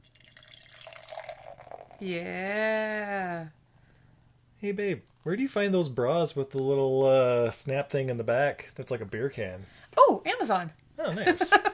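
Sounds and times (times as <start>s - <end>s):
sparkling water pouring from a can into a glass: 0.0s - 2.5s
speech: 2.0s - 3.6s, 4.6s - 11.7s.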